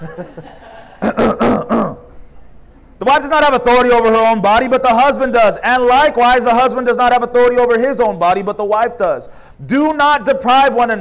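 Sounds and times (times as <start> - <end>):
speech: 0.0 - 0.6, 3.1 - 10.9
laughter: 0.0 - 1.2
harsh coughs: 1.0 - 2.2.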